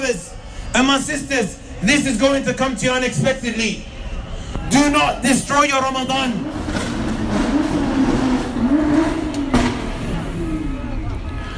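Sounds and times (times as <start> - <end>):
speech: 0.1 - 3.9, 4.7 - 6.9
car engine revving: 5.8 - 11.3.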